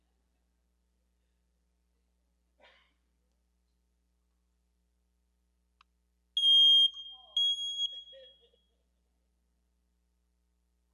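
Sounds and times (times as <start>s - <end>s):
faint low noise: 0.0s - 10.9s
smoke detector beeping: 6.4s - 8.5s.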